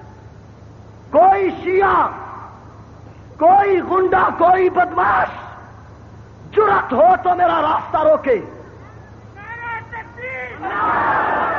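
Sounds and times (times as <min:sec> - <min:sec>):
speech: 0:01.1 - 0:02.2, 0:03.4 - 0:05.4, 0:06.6 - 0:08.6
crowd shouting at a rally: 0:08.9 - 0:11.5
crowd chanting slogans at a rally: 0:10.6 - 0:11.5.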